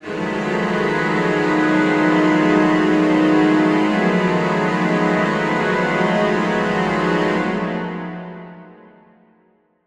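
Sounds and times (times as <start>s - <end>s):
mid-register horror suspense strings: 0.0s - 8.6s.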